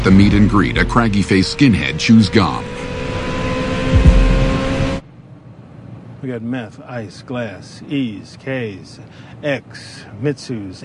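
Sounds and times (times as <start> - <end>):
speech: 0.0 - 3.0, 6.2 - 10.8
Ferrari sports car engine revving with twin exhausts: 0.0 - 5.0.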